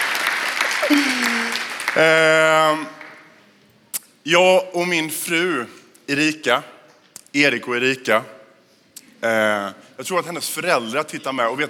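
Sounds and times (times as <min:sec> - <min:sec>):
large crowd applauding: 0:00.0 - 0:03.3
speech: 0:00.9 - 0:01.2, 0:02.0 - 0:03.0, 0:04.2 - 0:08.4, 0:09.2 - 0:11.6.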